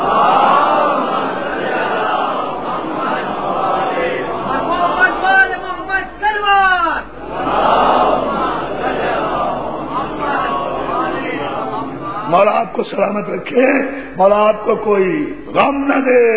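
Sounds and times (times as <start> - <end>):
large crowd chanting religious slogans in unison: 0.0 - 5.6, 7.0 - 12.5
speech: 12.4 - 16.3.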